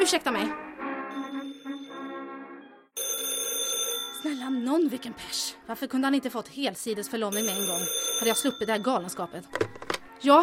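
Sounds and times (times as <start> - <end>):
speech: 0.0 - 1.3, 4.2 - 10.4
telephone ringing with a steady electronic tone: 3.0 - 5.0, 7.3 - 10.1.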